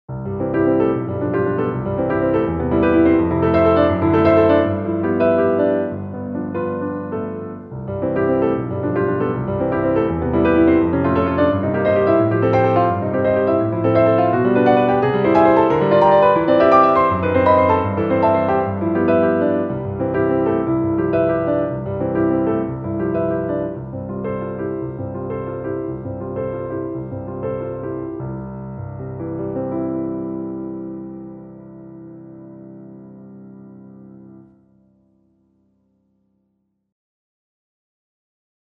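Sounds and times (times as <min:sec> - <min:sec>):
piano prelude: 0:00.1 - 0:36.0.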